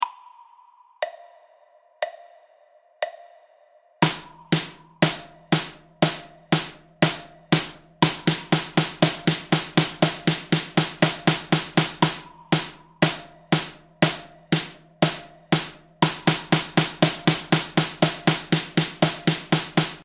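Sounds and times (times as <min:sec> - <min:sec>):
drum stroke: 0:04.0 - 0:20.0.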